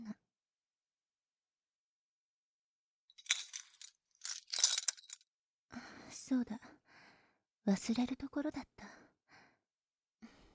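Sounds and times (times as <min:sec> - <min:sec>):
metal key jingling as it is handed over: 0:03.2 - 0:05.2
speech: 0:06.3 - 0:06.8, 0:07.6 - 0:09.0.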